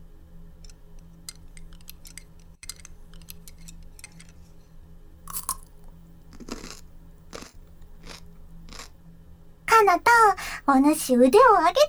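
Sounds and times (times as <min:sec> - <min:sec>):
faint steady hum: 0:00.0 - 0:11.8
crunchy pickled cucumber chewed with rice: 0:05.3 - 0:09.0
speech: 0:09.9 - 0:11.8.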